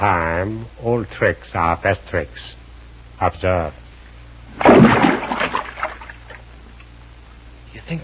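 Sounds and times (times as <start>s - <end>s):
speech: 0.0s - 2.6s, 3.2s - 3.8s, 4.6s - 5.6s, 7.8s - 8.0s
rock splashing into a water hole: 4.6s - 6.4s.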